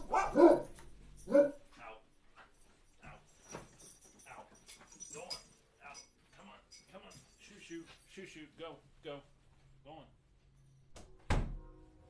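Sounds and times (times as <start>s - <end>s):
dog barking: 0.0s - 1.6s.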